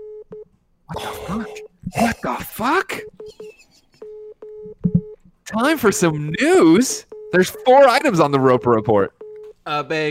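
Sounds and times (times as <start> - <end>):
speech: 0.9 - 3.8, 5.5 - 10.0
Morse code beeps from a phone app: 2.9 - 5.2, 7.1 - 9.5.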